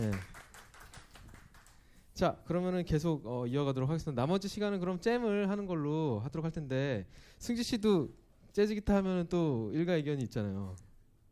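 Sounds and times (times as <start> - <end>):
few people clapping: 0.0 - 2.0
speech: 2.2 - 10.9.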